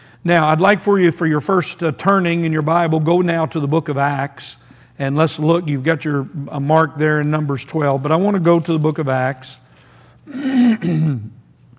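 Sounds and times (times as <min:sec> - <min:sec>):
speech: 0:00.2 - 0:09.6, 0:10.2 - 0:11.4
man clearing his throat: 0:10.3 - 0:11.5.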